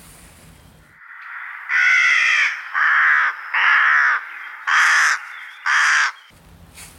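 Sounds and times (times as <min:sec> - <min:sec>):
rook cawing: 0:01.0 - 0:06.3.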